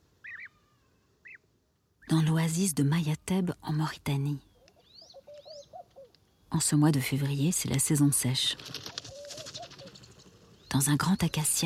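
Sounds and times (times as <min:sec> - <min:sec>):
speech: 0:02.1 - 0:04.5, 0:06.5 - 0:08.9, 0:10.7 - 0:11.6
laughing dove cooing in a date palm at an oasis in Mauritania: 0:08.9 - 0:10.4.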